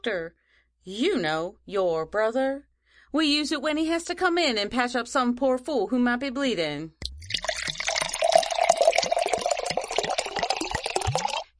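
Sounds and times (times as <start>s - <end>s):
speech: 0.0s - 7.0s
cold water pouring and sloshing into a basin: 7.0s - 11.5s.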